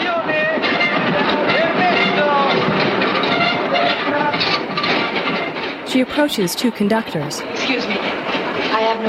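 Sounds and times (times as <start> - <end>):
crowd murmuring and calling out on a train platform: 0.0 - 9.0
train rumbling at a station platform: 0.0 - 9.0
high squeals: 0.4 - 5.8
speech: 6.0 - 8.0.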